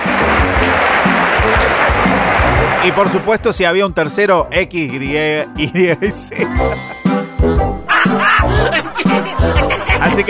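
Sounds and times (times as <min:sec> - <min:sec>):
crowd applause: 0:00.0 - 0:03.4, 0:07.8 - 0:10.2
speech: 0:02.8 - 0:07.7, 0:08.5 - 0:10.2
laughter: 0:05.6 - 0:07.0, 0:07.8 - 0:10.2.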